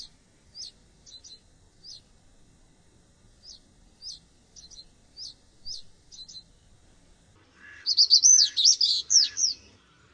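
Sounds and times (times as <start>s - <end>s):
common reed bunting singing with scratchy tumbling notes: 0.0s - 2.3s, 3.3s - 10.1s.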